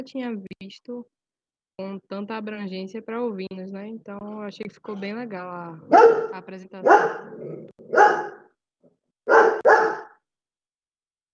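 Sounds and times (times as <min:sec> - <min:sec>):
speech: 0:00.0 - 0:01.2, 0:01.8 - 0:08.3
dog barking angrily at a bird at the window: 0:05.8 - 0:08.5, 0:09.3 - 0:10.2.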